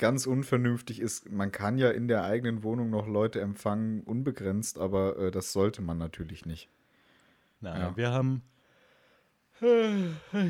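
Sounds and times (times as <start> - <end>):
speech: 0.0 - 6.8, 7.6 - 8.5, 9.6 - 10.4
person's brief vocal sigh: 9.6 - 10.4
person's voiced yawn with downward-sliding groan: 9.6 - 10.4.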